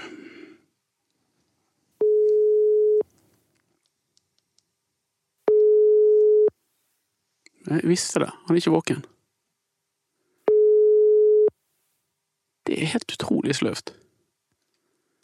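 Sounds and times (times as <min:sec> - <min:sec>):
outgoing phone call ringback tone: 0:02.0 - 0:03.0, 0:05.5 - 0:06.5, 0:10.5 - 0:11.5
speech: 0:07.6 - 0:09.2, 0:12.9 - 0:14.0.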